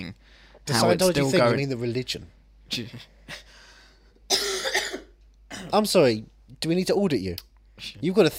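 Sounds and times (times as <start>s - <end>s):
speech: 0.1s - 3.5s, 5.7s - 8.3s
raspy coughing: 4.3s - 5.8s.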